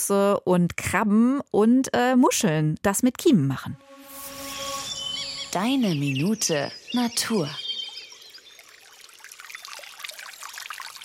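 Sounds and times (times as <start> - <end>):
speech: 0.0 - 3.9, 5.5 - 7.6
small mountain stream burbling near its spring: 6.9 - 11.0.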